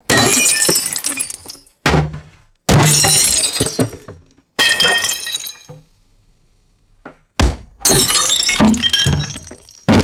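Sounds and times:
large glass jugs smashing and scattering: 0:00.1 - 0:01.7, 0:02.7 - 0:05.7, 0:07.8 - 0:10.0.

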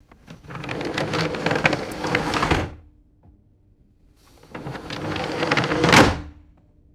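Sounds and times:
wooden roll top desk sliding open and closed: 0:00.2 - 0:02.8, 0:04.4 - 0:06.4.

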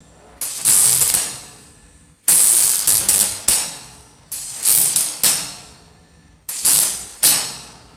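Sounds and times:
short crackling arc welder bursts: 0:00.4 - 0:01.7, 0:02.3 - 0:05.8, 0:06.5 - 0:07.9.

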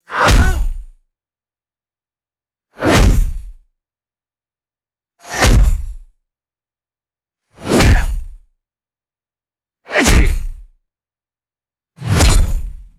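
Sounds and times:
stylized retro anime punches: 0:00.2 - 0:00.8, 0:02.8 - 0:03.4, 0:05.3 - 0:05.9, 0:10.0 - 0:10.5, 0:12.0 - 0:12.8.

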